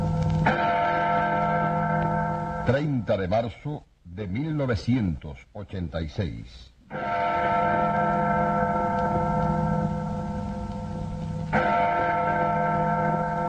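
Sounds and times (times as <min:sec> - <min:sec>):
church bells tolling: 0:00.0 - 0:03.6, 0:06.9 - 0:13.4
speech: 0:02.7 - 0:08.2.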